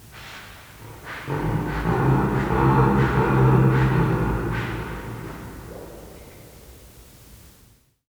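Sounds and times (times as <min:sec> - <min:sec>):
pygmy hippopotamus calling: 0:00.8 - 0:06.5.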